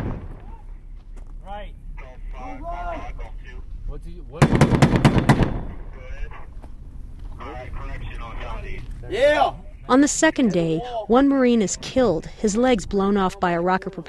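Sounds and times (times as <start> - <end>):
burst of gunfire in a battle between troops and Taliban fighters: 0.0 - 0.6, 4.4 - 5.9
men talking and shouting: 0.0 - 14.0
speech: 9.9 - 14.0.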